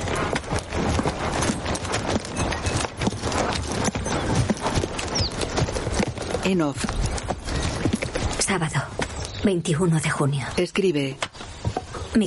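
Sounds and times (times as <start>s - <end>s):
horses riding away, hooves clip-clopping: 0.0s - 9.5s
speech: 6.4s - 7.1s, 8.5s - 11.3s.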